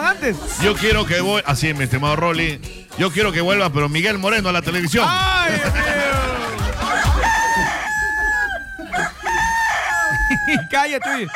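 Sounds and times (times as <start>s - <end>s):
laughter: 0.0s - 1.4s, 5.3s - 11.3s
speech: 0.2s - 6.4s, 10.5s - 11.3s
hens clucking and squawking: 6.6s - 11.3s
rooster crowing: 6.8s - 11.3s.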